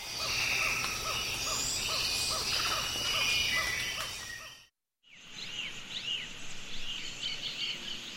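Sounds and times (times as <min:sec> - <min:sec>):
birds chirping in the Osa Peninsula rainforest, Costa Rica: 0:00.0 - 0:08.1
insects in the Osa Peninsula rainforest, Costa Rica: 0:00.0 - 0:08.1.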